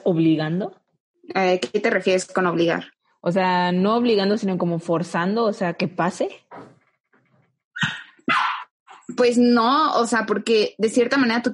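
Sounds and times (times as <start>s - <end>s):
speech: 0.0s - 6.7s, 9.1s - 11.5s
dog yelping: 7.8s - 8.7s
dog barking: 7.9s - 8.7s.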